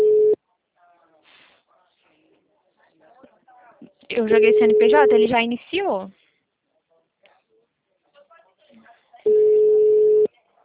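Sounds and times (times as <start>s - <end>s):
phone line tone while placing a call: 0.0s - 0.4s, 4.4s - 5.3s, 9.3s - 10.3s
speech: 4.2s - 6.2s.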